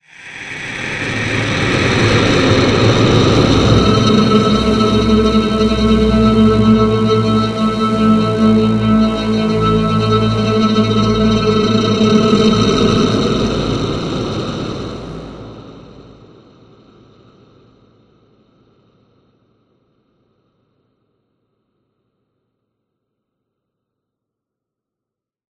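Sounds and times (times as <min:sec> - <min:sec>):
music ending: 0:01.2 - 0:15.3.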